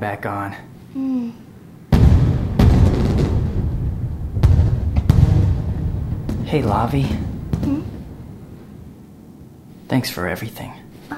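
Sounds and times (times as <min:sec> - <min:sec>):
speech: 0:00.0 - 0:01.4, 0:06.5 - 0:07.9, 0:09.9 - 0:11.1
fireworks exploding in booms: 0:01.9 - 0:10.5
continuous rumbling crackle of fireworks: 0:01.9 - 0:10.7.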